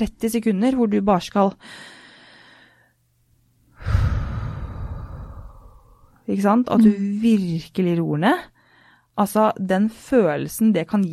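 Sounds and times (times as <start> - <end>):
speech: 0.0 - 2.0, 6.3 - 8.5, 9.2 - 11.1
slow deep breath in and out as a calming breathing exercise: 1.6 - 3.0, 3.7 - 6.2.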